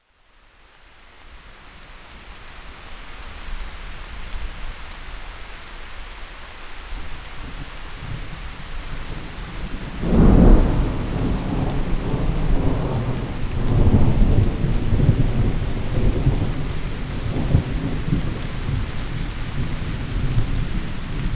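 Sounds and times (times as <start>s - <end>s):
rain: 0.0s - 21.3s
wind: 0.0s - 21.3s
thunder: 9.7s - 18.9s.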